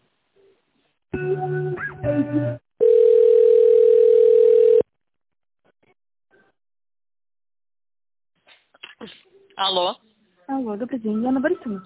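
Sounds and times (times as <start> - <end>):
speech: 2.2 - 2.6, 10.8 - 11.8
loud steady single-pitched telephone dial tone: 2.8 - 4.8.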